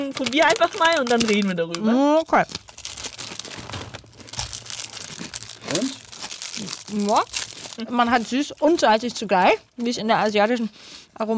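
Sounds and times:
outer wrapping of a snack crinkling as it is pulled open: 0.0s - 9.0s
speech: 0.1s - 2.7s, 6.6s - 11.3s.

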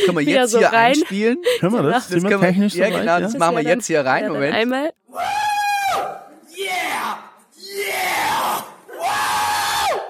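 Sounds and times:
laughter: 0.0s - 4.6s
speech: 0.0s - 5.4s
loud joyful yells in an office: 5.1s - 10.0s.

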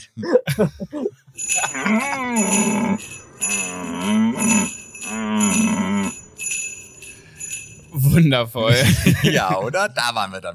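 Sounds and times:
speech: 0.1s - 5.4s, 8.2s - 10.5s
laughter: 0.2s - 2.4s, 8.6s - 10.0s
moose-like bellowing call: 1.7s - 6.2s.

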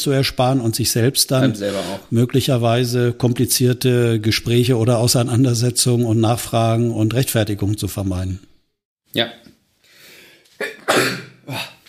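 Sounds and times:
speech: 0.0s - 8.5s, 9.2s - 9.5s, 10.6s - 11.8s
person sneezing: 1.4s - 2.0s, 10.6s - 11.8s.

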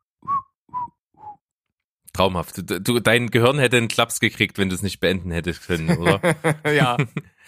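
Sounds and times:
person whistling notes: 0.2s - 1.4s
speech: 2.2s - 7.4s
laughter: 5.7s - 7.3s.

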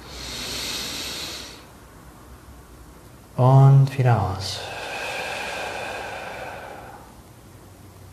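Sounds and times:
long deep breath drawn in through the nose: 0.0s - 1.7s, 4.6s - 7.2s
speech: 3.4s - 4.7s.

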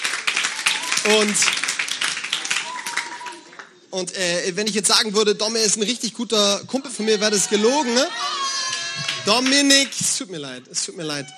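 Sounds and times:
crowd applauding: 0.0s - 3.9s, 7.1s - 10.2s
speech: 1.0s - 1.7s, 3.9s - 8.5s, 9.2s - 11.3s.

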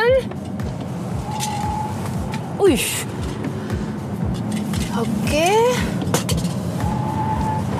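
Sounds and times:
electric car driving through turns with low rumble: 0.0s - 7.7s
rising and falling whining tones of electric car: 0.3s - 7.7s
tire squeal in curves: 1.2s - 2.2s, 6.7s - 7.7s
speech: 2.6s - 3.2s.

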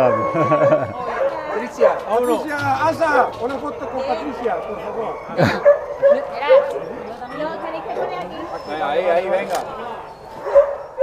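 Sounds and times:
laughter: 0.0s - 1.2s, 4.8s - 5.8s
speech: 0.0s - 10.6s
people chattering: 0.0s - 11.0s
several dogs barking and yipping: 0.0s - 11.0s
person calling dogs' names: 2.2s - 4.4s.

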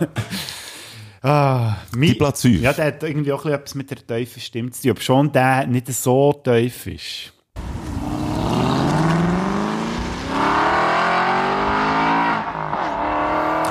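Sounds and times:
speech: 0.0s - 0.4s, 1.2s - 7.4s
laughter: 0.0s - 0.5s
car engine revving hard: 7.6s - 13.6s.

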